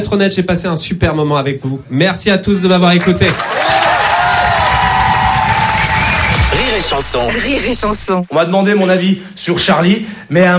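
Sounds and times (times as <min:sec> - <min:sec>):
speech: 0:00.0 - 0:03.6, 0:06.9 - 0:10.5
large audience clapping: 0:02.9 - 0:08.1.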